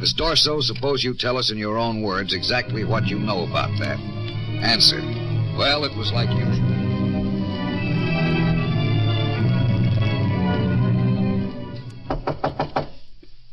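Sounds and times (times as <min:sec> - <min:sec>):
speech: 0:00.0 - 0:06.8
dense low rumbling noise: 0:01.7 - 0:12.2
knocking on a door: 0:12.0 - 0:13.0.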